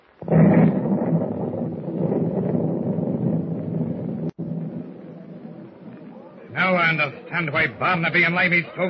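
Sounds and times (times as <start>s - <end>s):
explosion shaking a ship: 0.0s - 6.2s
heavy rumbling roar: 0.1s - 6.2s
speech: 6.9s - 8.8s.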